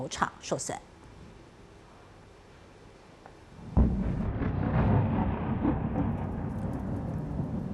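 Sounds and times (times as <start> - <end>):
speech: 0.0 - 0.9
heavy explosion boom during an air strike: 3.7 - 7.7.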